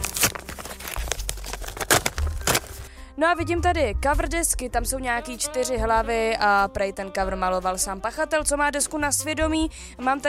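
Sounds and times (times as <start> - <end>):
paper envelope torn open and crinkled: 0.0 - 2.9
speech: 3.2 - 10.2.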